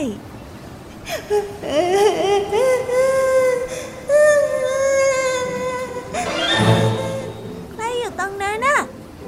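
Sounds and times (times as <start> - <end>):
person crying and whimpering in a garden on a snowy winter day: 1.1 - 7.8.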